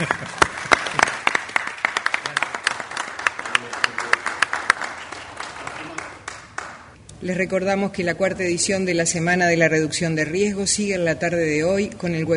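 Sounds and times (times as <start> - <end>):
audience applauding: 0.0 - 7.0
speech: 7.2 - 12.3.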